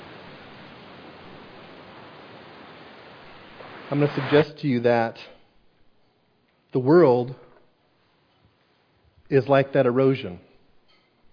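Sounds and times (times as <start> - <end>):
steady unbroken rush of ocean surf: 0.0 - 4.5
speech: 3.9 - 5.4, 6.7 - 7.4, 9.3 - 10.5.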